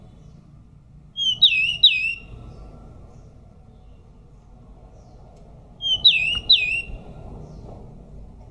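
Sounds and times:
pied bush chat singing slurred whistled notes: 1.1s - 2.6s, 5.8s - 7.6s.

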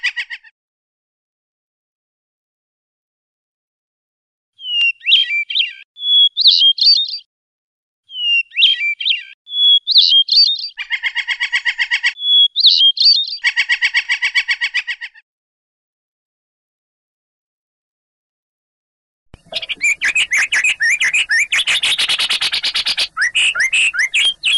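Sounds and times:
Oriental magpie-robin song with whistled phrases and buzzy rattles: 4.6s - 7.3s, 8.1s - 15.2s, 19.4s - 24.5s.

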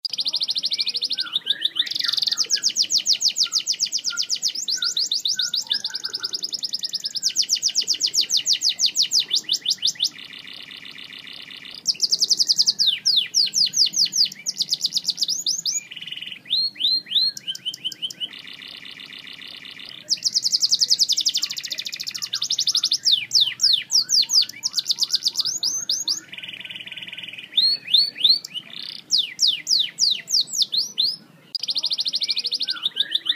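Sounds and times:
Snow White canary singing: 0.0s - 33.3s.

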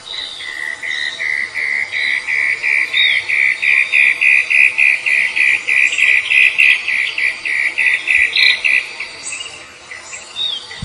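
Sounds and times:
cicada: 0.0s - 10.8s.

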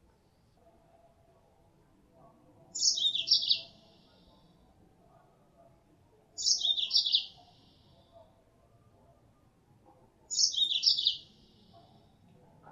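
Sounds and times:
female Mozambique canary lure calls: 2.8s - 3.7s, 6.4s - 7.3s, 10.3s - 11.2s.

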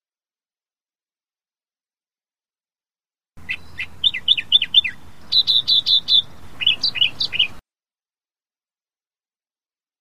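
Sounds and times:
Australian reed warbler singing: 3.4s - 7.6s.

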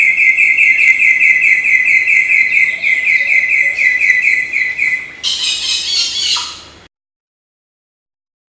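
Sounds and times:
samyong bird song with pulsed high trill and harsh rasping notes: 0.0s - 6.8s.

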